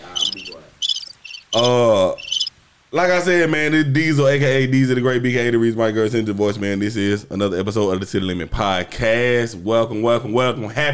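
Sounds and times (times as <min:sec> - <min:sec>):
crickets chirping in high-pitched trills: 0:00.0 - 0:02.8
speech: 0:01.5 - 0:02.2, 0:02.9 - 0:10.9.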